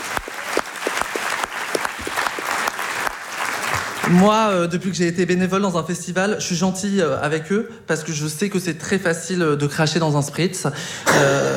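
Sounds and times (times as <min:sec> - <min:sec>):
audience applauding: 0:00.0 - 0:04.4
speech: 0:04.1 - 0:11.5.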